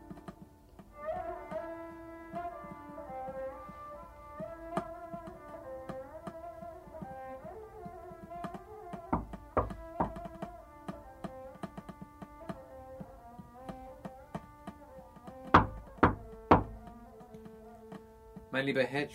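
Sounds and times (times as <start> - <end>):
soft steady bed of music: 0.0 - 19.1
knocking on a door in a hotel salon: 8.2 - 12.6, 13.4 - 17.0
speech: 18.6 - 19.1.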